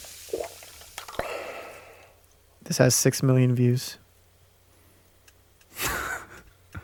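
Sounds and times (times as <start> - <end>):
liquid poured into a glass: 0.0 - 1.3
poured drink fizzing as it settles: 0.0 - 2.1
speech: 2.7 - 4.0.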